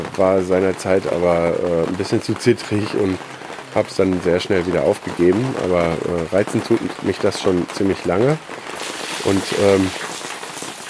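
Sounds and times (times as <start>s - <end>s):
heavy rain falling: 0.0s - 10.8s
speech: 0.1s - 10.1s.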